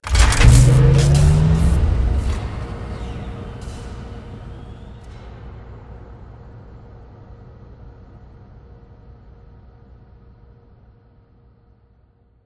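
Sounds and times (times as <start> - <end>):
power turning on: 0.0 - 5.2.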